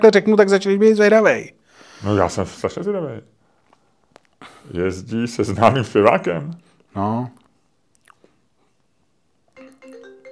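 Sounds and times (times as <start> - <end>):
speech: 0.0 - 3.4, 4.4 - 7.4
mobile phone ringtone: 9.6 - 10.3.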